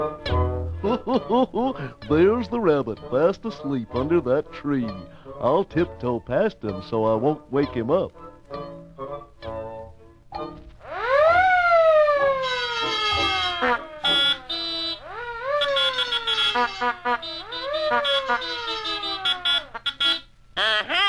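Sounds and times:
speech: 0:00.0 - 0:08.7
laughter: 0:00.8 - 0:02.0
siren-like alarm wailing: 0:10.8 - 0:20.3.

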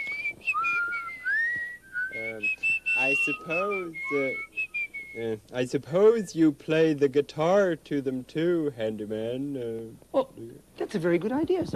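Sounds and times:
person whistling a tune: 0:00.0 - 0:05.4
speech: 0:03.2 - 0:04.5, 0:05.2 - 0:11.7.

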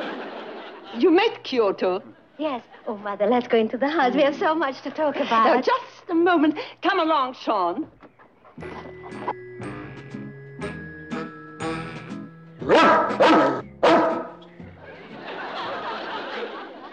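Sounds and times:
laughter: 0:00.0 - 0:01.4, 0:14.6 - 0:16.9
speech: 0:00.9 - 0:08.0
dog yipping and whining: 0:12.7 - 0:14.4.

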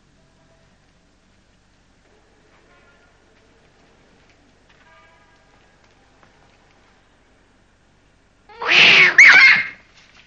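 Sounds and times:
cat meowing: 0:08.5 - 0:09.8.

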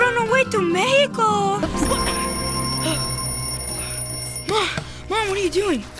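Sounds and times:
speech: 0:00.5 - 0:01.4, 0:05.5 - 0:05.9
alarm clock ringing with a steady electronic bell tone: 0:01.8 - 0:04.8.

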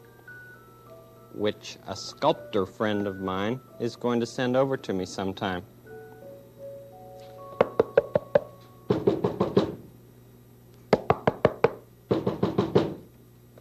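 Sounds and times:
speech: 0:01.4 - 0:05.7
firm knocking on a door: 0:07.6 - 0:09.8, 0:11.0 - 0:13.1.

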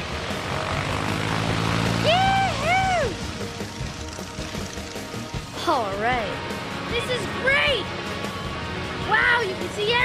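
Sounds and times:
small propeller airplane taking off: 0:00.0 - 0:05.5
speech: 0:05.7 - 0:08.0, 0:09.1 - 0:10.0.

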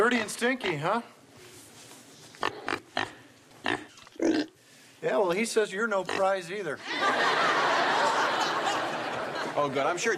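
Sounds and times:
speech: 0:00.0 - 0:01.2, 0:05.0 - 0:07.5, 0:09.6 - 0:10.1
pig grunting and oinking in short snorty bursts: 0:02.4 - 0:04.6, 0:06.0 - 0:06.4
laughter: 0:06.8 - 0:10.1.

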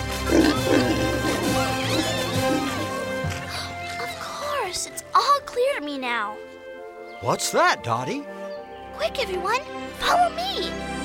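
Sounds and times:
crowd of pigs oinking and squealing: 0:00.2 - 0:04.0
speech: 0:06.0 - 0:06.5, 0:07.2 - 0:08.4, 0:09.0 - 0:10.9.

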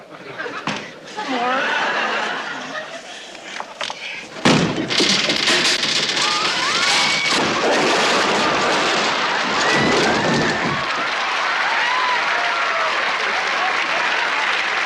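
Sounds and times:
laughter: 0:00.0 - 0:04.2, 0:07.6 - 0:11.7, 0:12.5 - 0:14.8
rattling clattering noise: 0:03.8 - 0:11.0
door being kicked in: 0:04.3 - 0:11.1.

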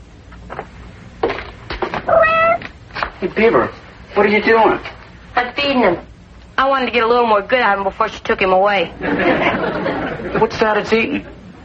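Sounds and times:
faint hum: 0:00.0 - 0:11.6
cat meowing insistently: 0:02.1 - 0:02.7
speech: 0:03.2 - 0:09.8, 0:10.4 - 0:11.4
laughter: 0:09.0 - 0:10.6.

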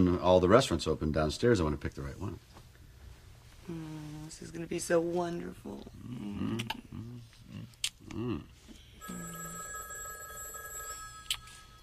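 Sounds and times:
speech: 0:00.0 - 0:02.5, 0:03.7 - 0:08.5
telephone bell ringing: 0:09.0 - 0:11.8.

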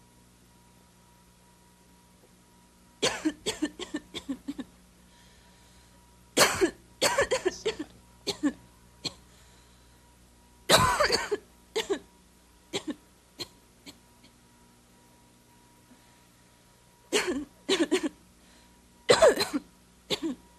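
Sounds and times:
person coughing in harsh hacks: 0:03.0 - 0:04.7, 0:06.4 - 0:09.2, 0:10.7 - 0:12.1, 0:12.8 - 0:14.0, 0:17.1 - 0:18.2, 0:19.1 - 0:20.4.

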